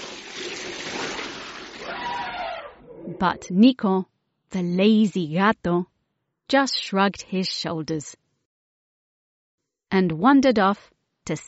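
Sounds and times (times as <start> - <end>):
elephant sucking water up its trunk and spraying it out: 0.0 - 2.0
speech: 3.2 - 5.9, 6.5 - 8.2, 9.9 - 11.4.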